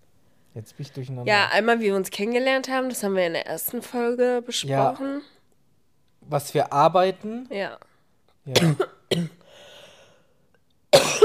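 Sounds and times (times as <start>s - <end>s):
speech: 0.5s - 5.3s, 6.3s - 7.9s, 8.5s - 9.4s
cough: 8.5s - 9.4s, 10.9s - 11.2s.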